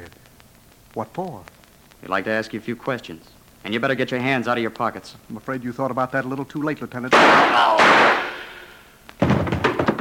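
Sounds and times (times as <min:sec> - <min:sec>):
speech: 0:01.0 - 0:08.3
gunshot: 0:07.1 - 0:09.8
rough clattering noises: 0:07.1 - 0:09.9.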